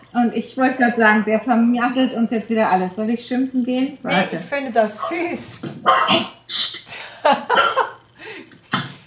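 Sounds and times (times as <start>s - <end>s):
speech: 0.1s - 7.8s
dog barking in short sharp bursts: 5.9s - 6.3s
laughter: 6.9s - 8.0s.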